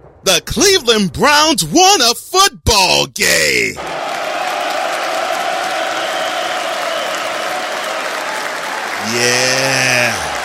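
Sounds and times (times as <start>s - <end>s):
speech: 0.3s - 4.0s, 9.0s - 10.3s
large crowd applauding: 3.8s - 10.4s.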